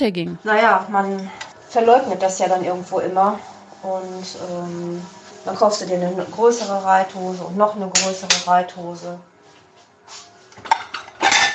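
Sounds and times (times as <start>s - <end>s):
speech: 0.0s - 9.3s
dishes clattering while being dried: 10.6s - 11.5s.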